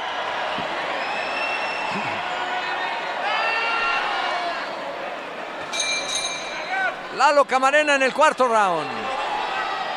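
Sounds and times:
large arena crowd at a boxing match cheering while doing the wave: 0.0 - 9.9
scattered high whistles from the crowd: 1.0 - 1.9
speech: 2.0 - 2.2, 7.2 - 9.1.

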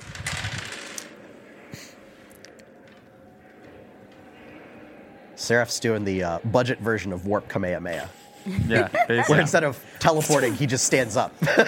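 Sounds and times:
dice tumbling across a table: 0.0 - 1.2
speech: 5.4 - 11.6
laughter: 8.4 - 9.8, 11.2 - 11.6.

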